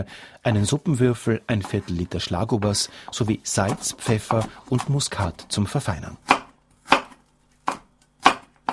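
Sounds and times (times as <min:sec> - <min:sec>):
speech: 0:00.0 - 0:06.4
knife chopping Hokkaido pumpkin on a board: 0:03.6 - 0:05.0, 0:06.2 - 0:08.7.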